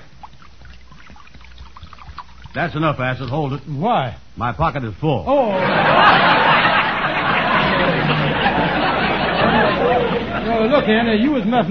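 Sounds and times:
liquid pouring from a jug: 0:00.0 - 0:03.7
speech: 0:02.6 - 0:06.3, 0:10.8 - 0:11.6
laughter: 0:05.5 - 0:11.6.

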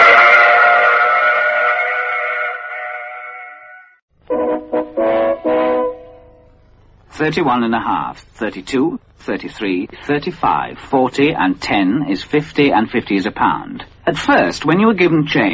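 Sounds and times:
train whistle at a station stop: 0:00.0 - 0:06.6
speech: 0:07.2 - 0:15.5.

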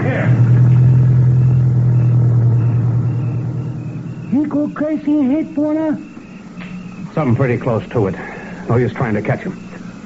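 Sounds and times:
car engine running while the car drives: 0:00.0 - 0:07.1
speech: 0:04.4 - 0:06.1, 0:07.2 - 0:09.6.

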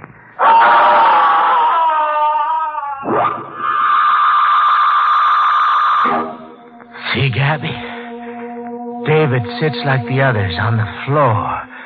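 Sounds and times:
child screaming: 0:00.4 - 0:06.6
music winding down like a record: 0:06.0 - 0:11.8
speech: 0:07.4 - 0:07.9, 0:09.0 - 0:11.6.

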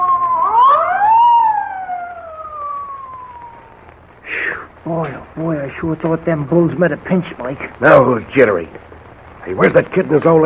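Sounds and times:
police car siren wailing as the car sweeps past: 0:00.0 - 0:03.9
brief burst of noise: 0:00.0 - 0:10.4
speech: 0:04.9 - 0:08.8, 0:09.4 - 0:10.4.

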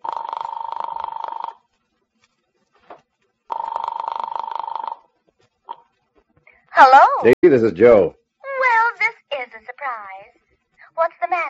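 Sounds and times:
telephone ringing as a call to an apartment goes through: 0:00.0 - 0:01.7, 0:03.5 - 0:05.8
speech: 0:06.8 - 0:08.2.

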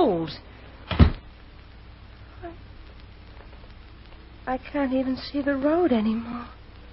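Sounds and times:
speech: 0:00.3 - 0:00.5, 0:04.5 - 0:06.6
door being shut against the cold during a snowstorm: 0:00.9 - 0:01.2.

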